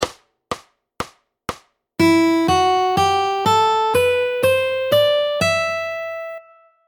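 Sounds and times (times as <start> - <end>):
easy fingerstyle classical guitar: 2.0 - 6.7.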